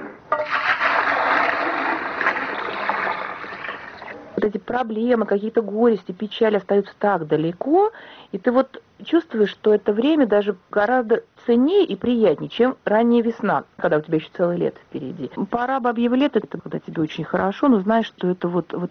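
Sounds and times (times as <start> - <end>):
water splashing and pouring as a woman draws water from a well: 0.3 - 4.3
speech: 4.8 - 18.8.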